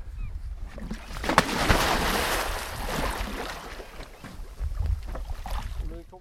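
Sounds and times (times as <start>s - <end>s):
steady outdoor wind: 0.0s - 6.1s
churning, sloshing open water: 0.7s - 5.9s
person plunging into open water: 0.8s - 4.1s.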